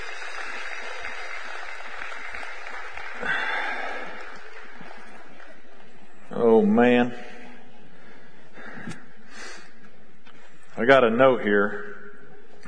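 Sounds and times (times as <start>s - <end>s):
audience clapping: 0.0s - 6.2s
speech: 6.6s - 7.3s, 10.8s - 11.9s.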